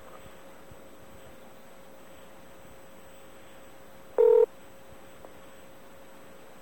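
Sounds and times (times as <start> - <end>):
dialing beep from a phone's voice-dialing system: 4.2 - 4.5.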